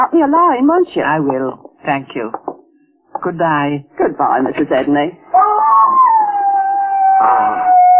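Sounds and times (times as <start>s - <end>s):
speech: 0.1s - 2.4s, 3.2s - 5.5s, 7.2s - 7.7s
dog howling: 5.4s - 7.9s.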